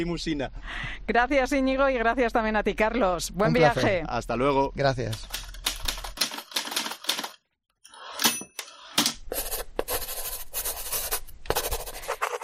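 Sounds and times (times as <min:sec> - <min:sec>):
speech: 0:00.0 - 0:05.4
typewriter clacks: 0:05.2 - 0:07.4
pencil and pen scratching on paper: 0:09.3 - 0:12.4.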